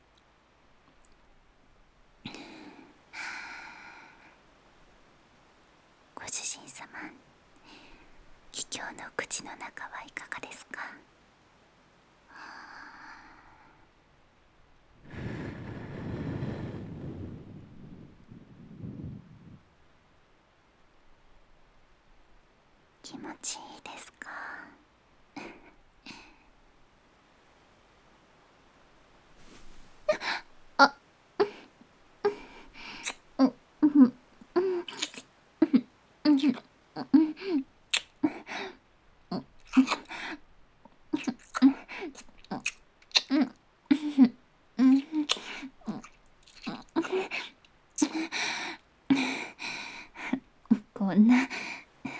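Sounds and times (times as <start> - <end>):
soft breathy hums: 2.2 - 4.8, 6.2 - 11.1, 12.2 - 14.0, 14.9 - 19.8, 23.0 - 26.7, 29.4 - 42.6, 43.2 - 52.1
speech: 9.0 - 11.0
intense wet kissing sounds: 32.9 - 33.3, 34.6 - 35.3, 37.9 - 38.4, 39.6 - 40.1, 41.2 - 43.5, 44.8 - 48.2.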